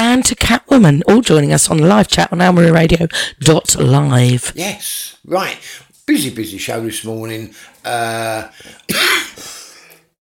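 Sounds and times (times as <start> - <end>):
speech: 0.2 - 9.5
dry tickly cough lingering after a cold: 8.6 - 10.1.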